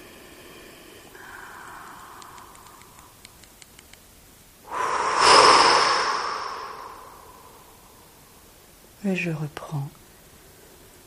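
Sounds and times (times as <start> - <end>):
long deep breath: 0.0 - 3.2, 4.7 - 8.3
speech: 9.0 - 10.0.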